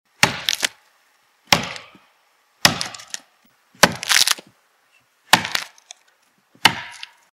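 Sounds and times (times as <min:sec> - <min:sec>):
axe chopping wood: 0:00.2 - 0:00.8, 0:01.5 - 0:02.0, 0:02.6 - 0:04.5, 0:05.3 - 0:05.8, 0:06.6 - 0:07.2.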